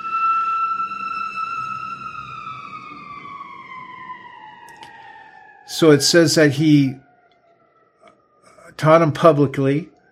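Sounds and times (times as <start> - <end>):
low traffic rumble: 0.0 - 7.2
passing emergency vehicle siren wailing outside: 0.0 - 10.1
speech: 5.7 - 7.0, 8.8 - 9.9.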